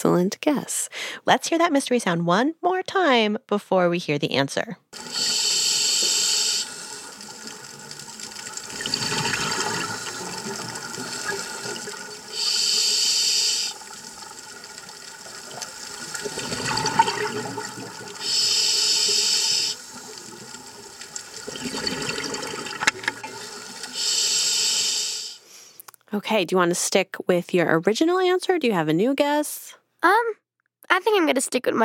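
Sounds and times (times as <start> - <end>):
speech: 0.0 - 5.2, 26.3 - 31.8
scuba breathing underwater through a self-contained regulator, hissing inhales: 0.9 - 1.2, 5.0 - 7.2, 11.2 - 13.9, 18.2 - 19.8, 23.8 - 25.8
scuba underwater exhales, bubbly and gurgling: 5.0 - 7.6, 8.5 - 25.4.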